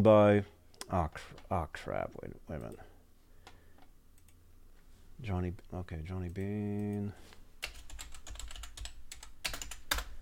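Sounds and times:
speech: 0.0 - 2.9, 5.2 - 7.4
typing on a computer keyboard: 7.6 - 10.1.

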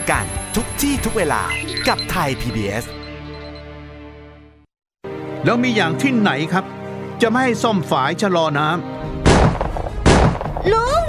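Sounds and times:
speech: 0.0 - 3.0, 5.4 - 9.2, 10.6 - 11.0
gunshots: 9.2 - 10.7.

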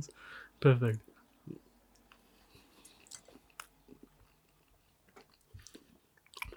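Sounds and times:
speech: 0.0 - 1.1
wet chewing of cake close to the microphone: 1.9 - 6.5.

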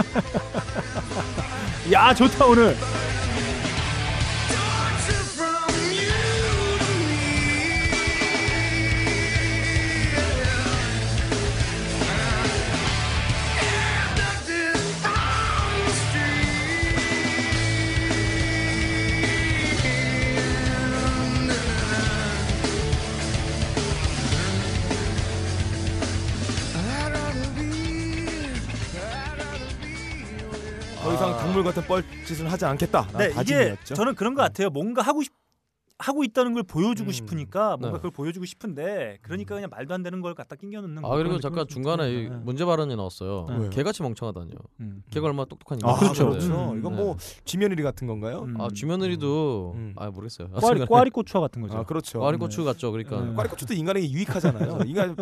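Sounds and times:
laughter: 0.0 - 3.6, 45.8 - 47.0, 50.6 - 51.1, 53.2 - 55.1
loud dense full-band rock track: 0.0 - 33.6
driving guitars: 0.0 - 33.8
drums: 0.0 - 34.5
speech: 1.9 - 3.0, 31.9 - 35.4, 36.0 - 55.1
strained shouted lead vocals: 31.0 - 31.8, 45.9 - 47.2, 50.6 - 51.0.

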